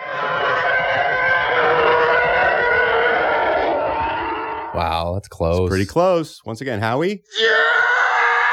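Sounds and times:
TIE fighter engine roar sound effect: 0:00.0 - 0:05.0
speech: 0:05.0 - 0:07.7.

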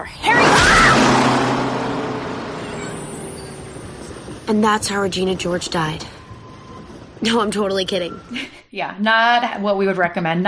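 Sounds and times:
large vehicle roaring past: 0:00.2 - 0:06.9
speech: 0:04.5 - 0:06.2, 0:07.2 - 0:10.4.

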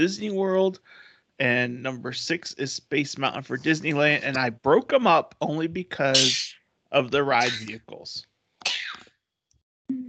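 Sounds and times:
speech: 0:00.0 - 0:08.8
person sneezing: 0:06.1 - 0:06.5, 0:07.4 - 0:07.8.

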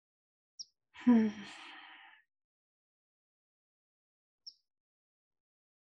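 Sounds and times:
voiced sigh: 0:01.0 - 0:02.1
deep breath during a mindfulness breathing exercise: 0:01.0 - 0:02.2.

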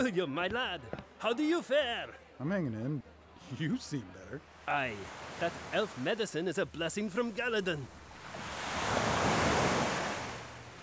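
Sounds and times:
speech: 0:00.0 - 0:08.0
ocean surf breaking: 0:04.4 - 0:10.8.

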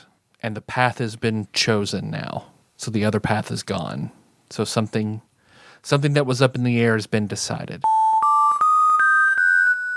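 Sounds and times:
speech: 0:00.4 - 0:08.0
cell phone ringing with a loud electronic ringtone: 0:07.8 - 0:09.9.

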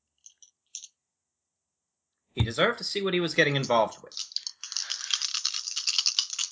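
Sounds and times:
dice rattling and clattering: 0:00.2 - 0:00.9, 0:03.9 - 0:06.5
speech: 0:02.4 - 0:04.3.

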